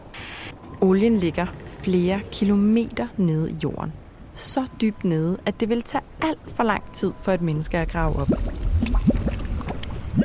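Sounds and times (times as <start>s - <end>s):
speech: 0.8s - 8.6s
oil gushing up out of the ground: 8.2s - 10.2s.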